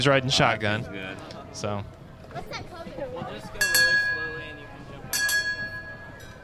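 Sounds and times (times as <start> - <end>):
speech: 0.0 - 3.0
outdoor noise: 0.0 - 6.4
surrey bike bell ringing: 3.6 - 6.4.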